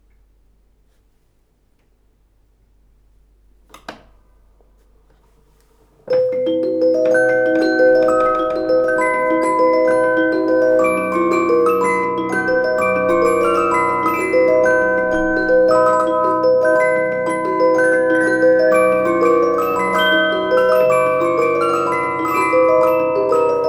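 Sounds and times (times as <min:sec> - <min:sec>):
cylinder music box barrel organ melody: 0:06.2 - 0:23.6.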